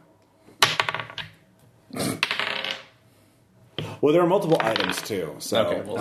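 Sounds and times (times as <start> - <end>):
dice rolling on a hard table: 0.6 - 1.4, 2.2 - 3.0, 4.5 - 5.2
speech: 4.0 - 5.9.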